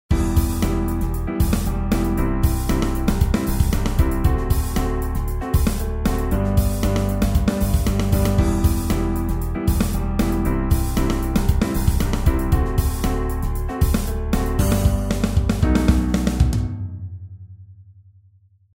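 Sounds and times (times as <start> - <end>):
funky soul music: 0.1 - 16.8.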